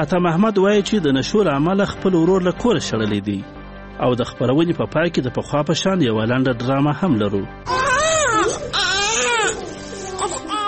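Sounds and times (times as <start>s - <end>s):
speech: 0.0s - 7.8s
baby crying: 7.7s - 10.6s.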